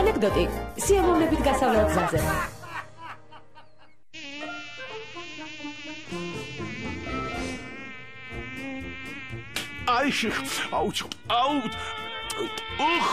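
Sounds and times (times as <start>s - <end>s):
speech: 0.2s - 2.6s, 9.9s - 13.1s
laughter: 1.4s - 4.0s
mosquitoes buzzing: 4.1s - 13.1s.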